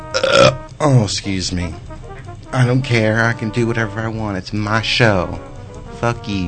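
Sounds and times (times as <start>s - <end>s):
person burping: 0.1s - 0.6s
speech: 0.4s - 1.9s, 2.5s - 6.4s.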